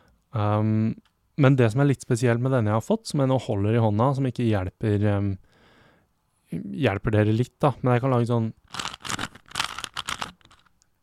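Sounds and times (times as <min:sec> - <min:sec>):
speech: 0:00.4 - 0:05.4, 0:06.5 - 0:08.6
fingers rubbing and clicking to mimic a Rubik's cube being twisted: 0:08.6 - 0:10.8.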